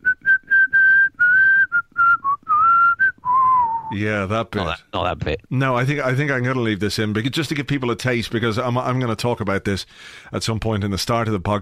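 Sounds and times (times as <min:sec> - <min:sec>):
person whistling a tune: 0:00.0 - 0:03.9
speech: 0:03.9 - 0:11.5.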